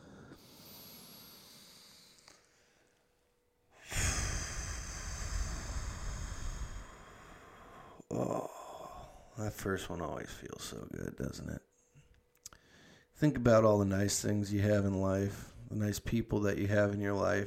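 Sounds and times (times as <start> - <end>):
long loud exhale out through the mouth: 0.0 - 2.8, 3.8 - 8.0
deep breath in through the nose: 0.0 - 2.9, 3.8 - 8.0
speech: 9.4 - 11.7, 13.2 - 17.4.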